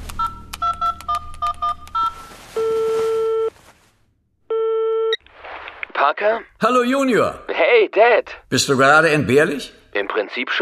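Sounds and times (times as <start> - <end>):
telephone keypad tones: 0.1 - 3.5
telephone ringing tones: 0.2 - 3.6, 4.5 - 5.2
speech: 6.1 - 10.6.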